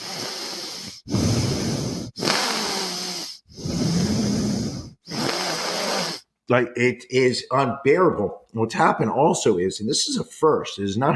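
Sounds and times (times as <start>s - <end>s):
heavy congested breaths pushed out through the nose: 0.0s - 6.3s
speech: 6.5s - 11.1s.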